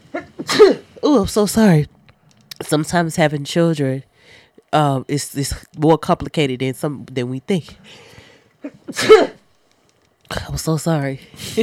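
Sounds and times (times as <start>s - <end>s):
sneeze: 0.2s - 0.9s, 8.7s - 9.4s
speech: 0.6s - 2.0s, 2.7s - 9.4s, 10.4s - 11.6s.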